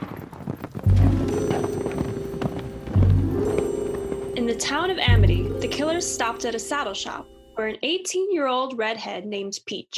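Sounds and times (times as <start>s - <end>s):
horses setting off, hooves clip-clopping: 0.0s - 6.9s
speech: 4.5s - 9.9s.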